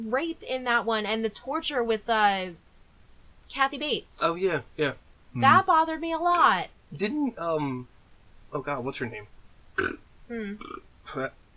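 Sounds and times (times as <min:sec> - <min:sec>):
speech: 0:00.0 - 0:02.6, 0:03.5 - 0:07.9, 0:08.5 - 0:11.4
person burping loudly: 0:09.8 - 0:11.3.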